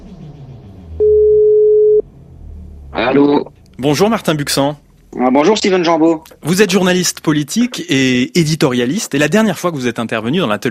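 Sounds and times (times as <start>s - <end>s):
telephone ringback tone on a call line: 1.0s - 2.0s
speech: 3.0s - 10.7s.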